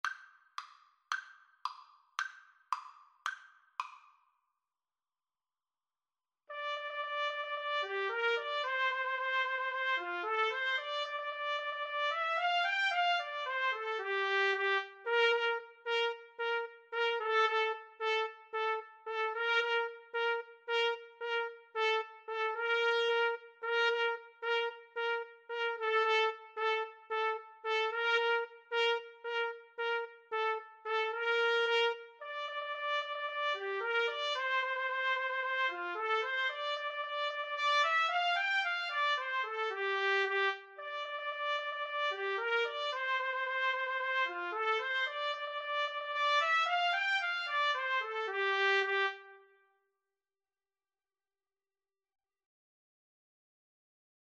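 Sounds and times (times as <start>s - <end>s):
trumpet duet: 6.5s - 49.6s.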